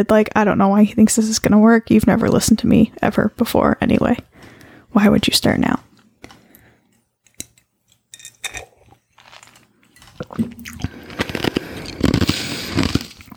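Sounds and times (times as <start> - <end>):
speech: 0.0 - 4.3, 4.9 - 5.9
ice from a drink crunched between the teeth: 9.2 - 13.3.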